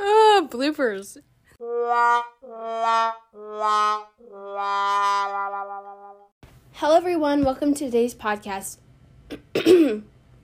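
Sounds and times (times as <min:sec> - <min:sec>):
speech: 0:00.5 - 0:06.2, 0:06.8 - 0:10.1
rough voiced cough: 0:09.3 - 0:10.1
throat clearing: 0:09.3 - 0:10.1.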